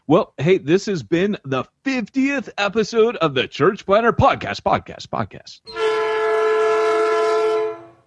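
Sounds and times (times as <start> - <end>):
speech: 0.1 - 5.8
train horn sound effect blaring in one sustained chord: 5.7 - 8.0.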